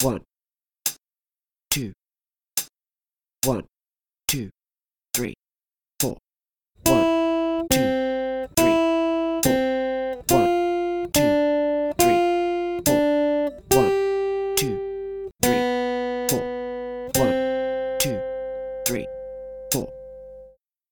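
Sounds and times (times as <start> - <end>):
two sustained guitar strings: 6.8 - 20.5.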